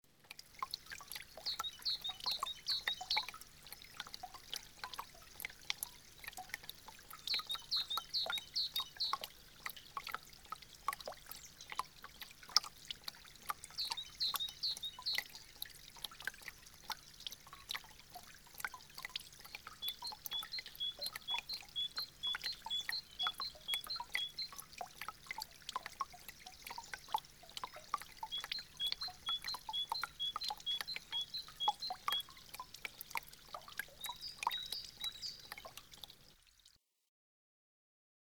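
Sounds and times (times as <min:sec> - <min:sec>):
dripping water: 0:00.1 - 0:36.8
birds: 0:00.8 - 0:04.1, 0:07.0 - 0:10.0, 0:13.7 - 0:15.4, 0:19.0 - 0:24.6, 0:26.2 - 0:33.2, 0:33.8 - 0:36.0.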